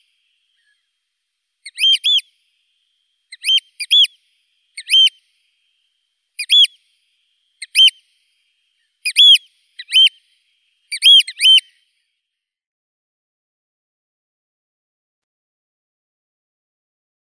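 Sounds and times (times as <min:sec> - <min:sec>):
Eurasian oystercatcher Haematopus ostralegus: 0:01.7 - 0:02.2, 0:03.4 - 0:04.1, 0:04.8 - 0:05.1, 0:09.1 - 0:10.2, 0:10.9 - 0:11.7.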